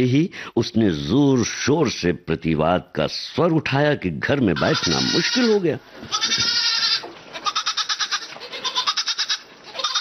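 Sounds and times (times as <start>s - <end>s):
speech: 0.0s - 6.8s
goat bleating: 4.4s - 9.9s.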